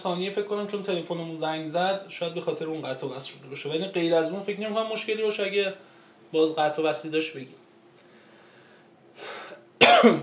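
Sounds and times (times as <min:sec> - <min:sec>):
speech: 0:00.0 - 0:07.6, 0:09.9 - 0:10.2
faint breathy noise: 0:05.8 - 0:06.3, 0:08.0 - 0:09.7
person with an allergy coughing: 0:09.5 - 0:10.2.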